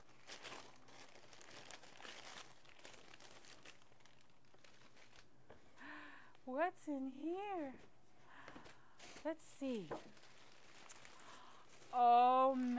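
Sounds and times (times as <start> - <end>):
wrapping paper being ripped and crumpled: 0.0 - 5.3, 9.0 - 12.7
speech: 6.6 - 7.9, 9.2 - 10.2, 11.9 - 12.7.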